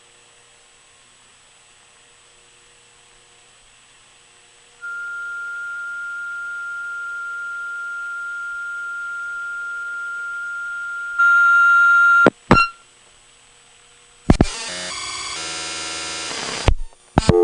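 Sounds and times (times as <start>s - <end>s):
answering machine record tone on a phone line for parts orders: 4.9s - 12.8s, 17.2s - 17.4s.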